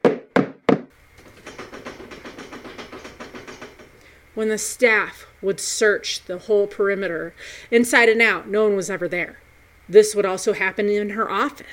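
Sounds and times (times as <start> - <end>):
loud bangs on a window with metal grating: 0.3 - 4.0
faint rhythmic clatter: 0.9 - 4.4
speech: 4.4 - 11.7.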